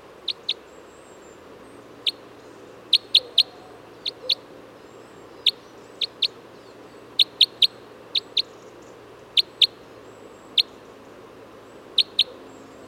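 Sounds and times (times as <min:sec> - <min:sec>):
red crossbill giving Type N kip flight calls: 0:00.2 - 0:00.6, 0:02.8 - 0:04.5, 0:07.1 - 0:08.6, 0:09.3 - 0:10.8, 0:12.0 - 0:12.7.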